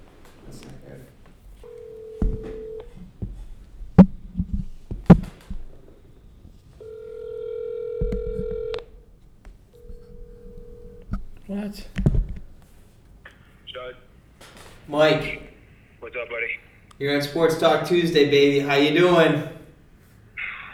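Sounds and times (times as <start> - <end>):
faint noise heard through the line: 0.0 - 20.7
outgoing phone call ringing tone heard through the line: 1.6 - 3.4, 6.7 - 12.0, 13.3 - 14.2, 15.0 - 16.9, 20.4 - 20.7
speech: 14.9 - 15.4, 17.0 - 19.5.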